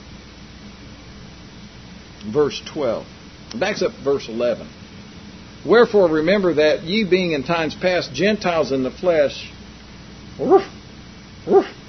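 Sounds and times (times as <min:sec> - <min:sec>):
speech: 0:02.2 - 0:04.8, 0:05.6 - 0:09.6, 0:10.4 - 0:10.8, 0:11.4 - 0:11.7
small puppy dogs yapping: 0:10.4 - 0:10.8, 0:11.5 - 0:11.8.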